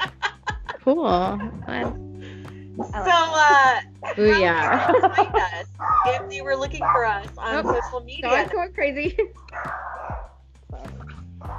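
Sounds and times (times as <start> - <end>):
laughter: 0.0 - 1.5, 3.1 - 9.5
speech: 0.8 - 2.0, 2.8 - 9.9
puppy giving short yips and sharp barks: 4.0 - 8.5, 9.5 - 11.5.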